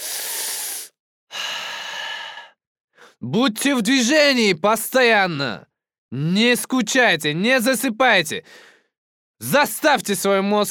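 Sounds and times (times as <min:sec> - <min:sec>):
deep breath in and out: 0:00.0 - 0:03.2, 0:08.4 - 0:09.0
speech: 0:03.2 - 0:08.7, 0:09.4 - 0:10.6.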